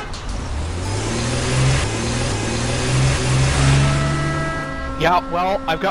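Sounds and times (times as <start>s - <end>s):
car engine revving while speeding: 0.0s - 5.9s
road rumble: 0.0s - 5.9s
speech: 5.0s - 5.9s.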